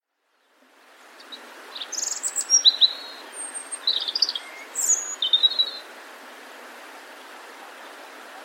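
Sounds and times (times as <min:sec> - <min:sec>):
Erithacus rubecula European robin singing: 0:01.2 - 0:05.9.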